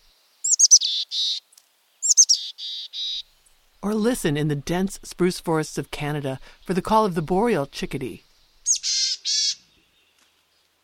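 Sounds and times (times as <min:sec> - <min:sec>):
mountain chickadee calls with chip and buzzy dee notes: 0:00.4 - 0:03.3, 0:08.3 - 0:09.7
speech: 0:03.8 - 0:08.3.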